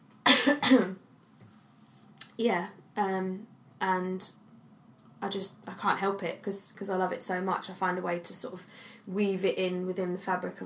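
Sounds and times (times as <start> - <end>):
person coughing: 0.2 - 1.0
person clearing throat: 0.3 - 1.0
speech: 0.5 - 1.0, 2.4 - 4.4, 5.2 - 10.6.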